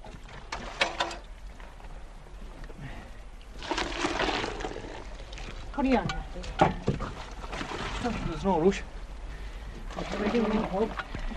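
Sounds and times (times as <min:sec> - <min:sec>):
clanks and sloshes of a saucepan: 0:00.0 - 0:02.8, 0:03.6 - 0:08.8, 0:09.7 - 0:11.3
hot water pouring into a saucepan: 0:03.6 - 0:05.5
speech: 0:05.8 - 0:06.9, 0:08.0 - 0:09.0, 0:10.3 - 0:11.1.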